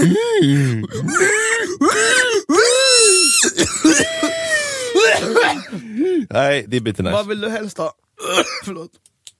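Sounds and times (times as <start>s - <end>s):
speech: 0.0s - 2.2s, 6.2s - 9.1s
person imitating pig squeals and grunts: 1.1s - 5.5s.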